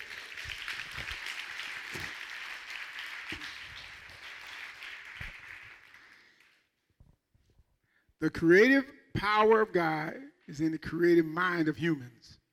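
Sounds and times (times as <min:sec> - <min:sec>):
crowd applauding: 0:00.0 - 0:06.7
speech: 0:08.2 - 0:12.2.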